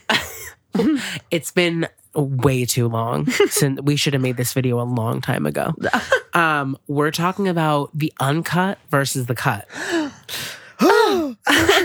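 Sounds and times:
speech: 1.3 - 11.8
person gasping dramatically: 9.7 - 11.8.

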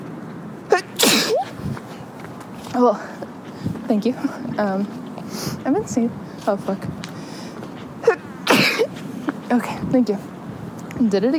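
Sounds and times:
person sneezing: 0.7 - 1.6, 8.0 - 8.9
speech: 2.8 - 3.3, 3.9 - 7.0, 9.5 - 10.3, 11.0 - 11.3.

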